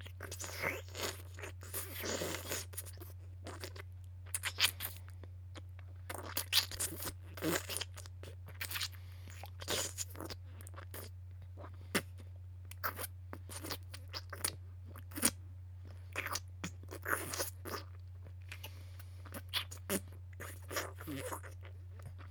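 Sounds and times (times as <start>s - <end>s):
crunching and chewing food: 0.0s - 22.2s
steady low hum: 0.0s - 22.2s.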